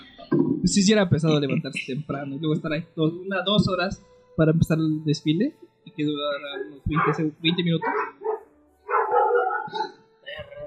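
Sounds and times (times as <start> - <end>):
speech: 0.6 - 8.2
female dog barking: 6.5 - 10.6
laughter: 9.0 - 10.6.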